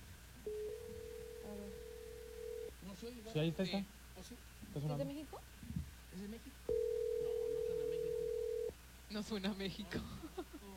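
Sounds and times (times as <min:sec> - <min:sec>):
ringback tone of a phone call waiting to be answered: 0:00.5 - 0:02.7, 0:06.7 - 0:08.7
speech: 0:02.9 - 0:06.7, 0:09.1 - 0:10.7.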